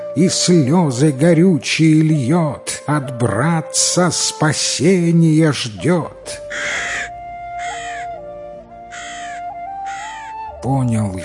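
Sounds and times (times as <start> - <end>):
speech: 0.2 - 6.9, 10.6 - 11.2
crow cawing: 6.4 - 10.5.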